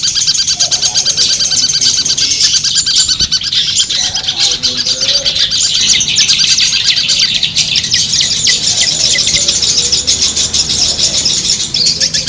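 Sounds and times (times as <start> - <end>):
long-tailed shrike competition-style song: 0.0 - 12.2.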